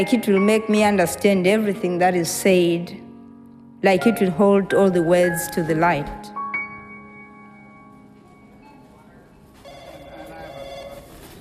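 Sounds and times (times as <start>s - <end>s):
speech: 0.0s - 3.0s, 3.8s - 6.4s
low murmur: 7.0s - 11.4s
telephone ringing with a bright electronic tone: 8.3s - 11.4s.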